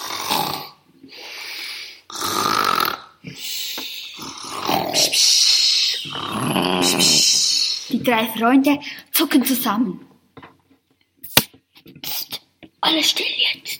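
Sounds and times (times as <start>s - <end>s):
loud monster snoring from a cave: 0.0s - 3.5s, 4.1s - 7.8s
speech: 8.0s - 10.1s, 12.9s - 13.7s.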